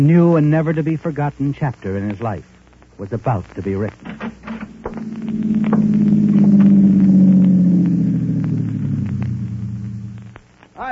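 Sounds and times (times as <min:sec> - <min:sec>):
speech: 0:00.0 - 0:04.4
faint ticks and crackles: 0:00.0 - 0:10.9
car engine droning on a narrow dusty road to a dam: 0:04.1 - 0:10.4.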